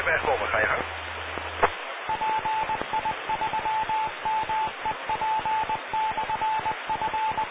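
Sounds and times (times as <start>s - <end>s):
narrow hissy radio channel: 0.0s - 7.5s
single-pitched Morse code identification tone from a radio repeater: 2.1s - 7.5s
radio click: 2.8s - 3.0s.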